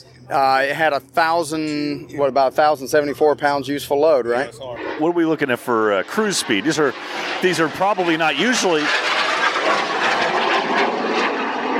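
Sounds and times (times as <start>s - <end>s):
speech: 0.3s - 9.1s
jets flying by: 4.3s - 11.7s.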